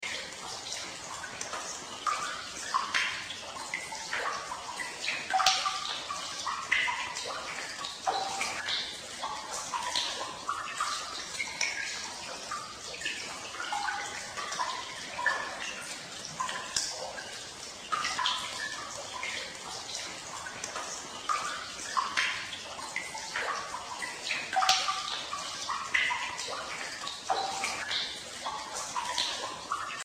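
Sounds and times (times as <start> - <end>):
underworld pool drips with heavy echo: 0.0 - 30.0.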